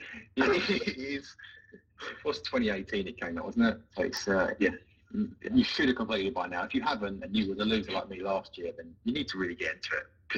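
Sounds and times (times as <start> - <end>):
laughter: 0.0 - 9.8
harsh throaty cough: 0.2 - 1.0
speech: 0.4 - 10.3.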